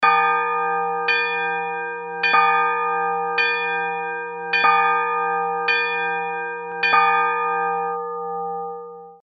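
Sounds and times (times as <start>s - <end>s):
church bells ringing: 0.0s - 9.2s.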